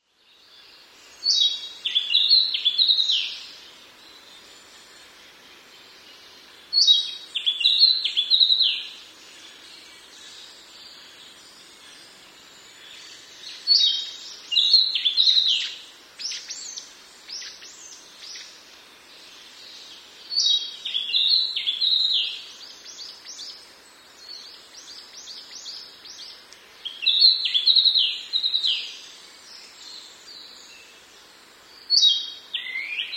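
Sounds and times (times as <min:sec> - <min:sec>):
Narcissus flycatcher singing in Chino Nagano Prefecture: 0:00.3 - 0:31.1.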